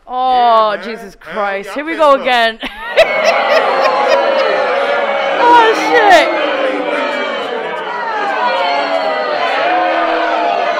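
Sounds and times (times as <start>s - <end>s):
speech: 0.1s - 3.9s, 5.4s - 6.4s
laughter: 0.4s - 10.7s
large angry crowd chattering and shouting: 2.9s - 10.7s.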